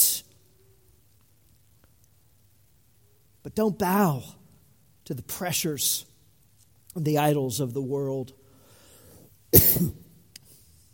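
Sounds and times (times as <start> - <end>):
speech: 3.4 - 4.4, 5.1 - 6.1, 6.9 - 8.4, 9.5 - 10.0
cough muffled by a face mask: 9.5 - 10.1.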